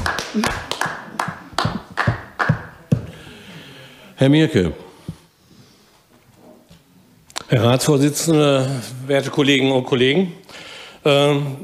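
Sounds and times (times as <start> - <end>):
applause in a council chamber: 0.0 - 2.7
speech: 0.4 - 0.7, 4.2 - 4.8, 7.5 - 11.6.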